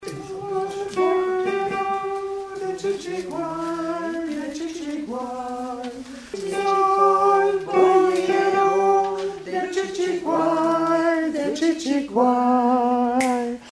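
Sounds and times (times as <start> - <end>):
alto voice singing a couplet: 0.0 - 13.6.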